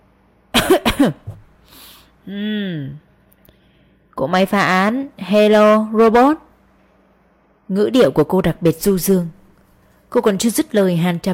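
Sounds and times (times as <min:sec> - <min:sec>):
voice imitating dry coughing: 0:00.6 - 0:01.4
speech: 0:00.7 - 0:01.3, 0:02.3 - 0:03.1, 0:04.2 - 0:06.4, 0:07.7 - 0:09.4, 0:10.1 - 0:11.3.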